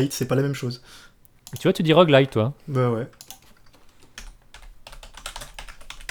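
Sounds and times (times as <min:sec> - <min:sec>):
speech: 0:00.0 - 0:03.3
two computer keyboards typing: 0:03.1 - 0:06.0.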